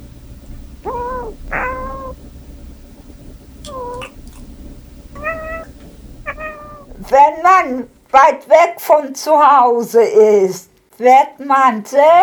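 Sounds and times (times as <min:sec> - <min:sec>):
cats lying in the warm sun meowing: 0:00.0 - 0:08.0
low hum: 0:00.0 - 0:08.2
speech: 0:07.1 - 0:12.2.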